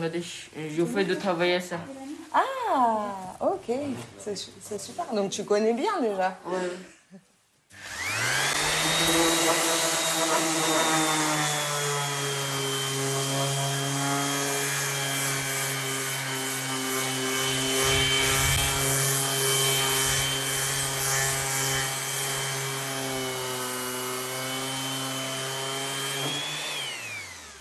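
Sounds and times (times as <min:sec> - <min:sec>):
speech: 0:00.0 - 0:07.0
electric sander running on wood: 0:07.7 - 0:27.5.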